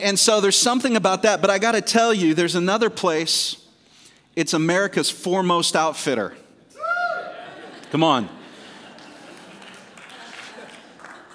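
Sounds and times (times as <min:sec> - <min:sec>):
speech: 0:00.0 - 0:03.6, 0:04.4 - 0:06.4, 0:07.9 - 0:08.4
laughter: 0:07.1 - 0:11.3
light crowd applause from a modest audience: 0:08.6 - 0:11.3.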